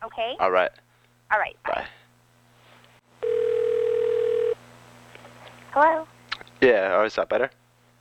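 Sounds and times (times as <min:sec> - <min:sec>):
speech: 0:00.0 - 0:02.0, 0:05.8 - 0:07.6
telephone dial tone: 0:03.2 - 0:04.6.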